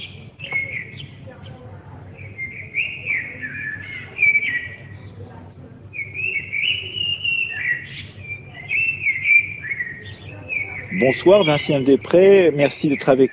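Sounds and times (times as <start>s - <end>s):
common blackbird singing in a courtyard in central Paris France: 0.0s - 1.2s, 2.2s - 5.2s, 5.9s - 13.3s
steady low urban rumble in central Paris France: 0.0s - 13.3s
speech: 11.0s - 13.3s.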